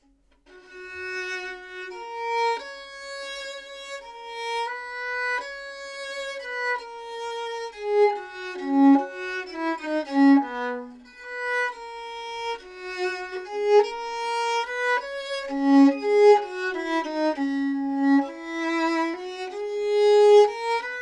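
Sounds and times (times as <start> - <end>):
gut strings played with a modern bow at 415 pitch without chinrest: 6.7 - 21.0.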